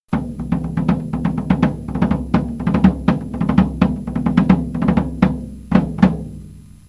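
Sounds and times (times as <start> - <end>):
tenor drum: 0.1 - 6.8.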